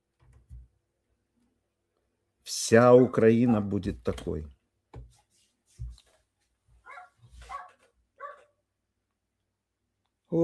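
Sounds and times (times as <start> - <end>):
speech: 2.7 - 4.6
dog barking in short sharp yaps: 3.4 - 3.8, 6.8 - 8.6.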